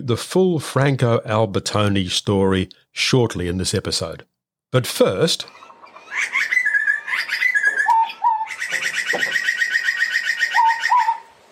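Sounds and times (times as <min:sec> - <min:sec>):
speech: 0:00.0 - 0:05.6
butcherbird singing flute-like whistled notes and warble: 0:05.5 - 0:11.3.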